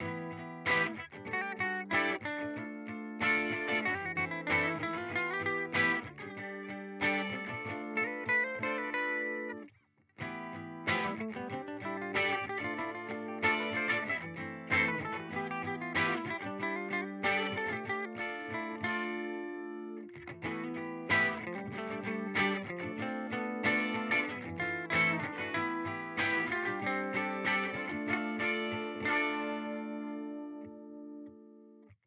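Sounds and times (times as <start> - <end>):
Deluxe Reverb guitar amplifier tone: 0.0 - 31.9.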